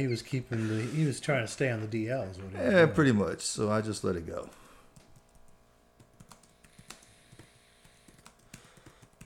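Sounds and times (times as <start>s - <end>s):
speech: 0.0s - 4.6s
typing on a computer keyboard: 5.0s - 9.2s.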